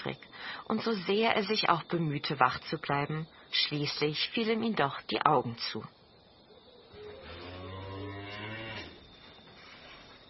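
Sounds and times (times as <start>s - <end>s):
speech: 0.0s - 6.0s
steady hiss of noise: 0.0s - 10.2s
cow mooing in a barn: 6.9s - 9.0s.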